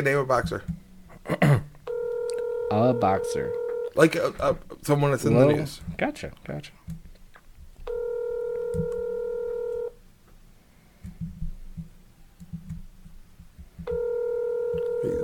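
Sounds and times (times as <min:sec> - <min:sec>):
speech: 0:00.0 - 0:01.6, 0:02.7 - 0:07.0
long steady phone ringback tones: 0:01.9 - 0:04.0, 0:07.9 - 0:09.9, 0:13.9 - 0:15.2.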